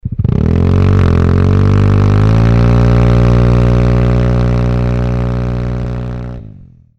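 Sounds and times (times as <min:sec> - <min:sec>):
scooter engine without sound insert: 0:00.0 - 0:06.9.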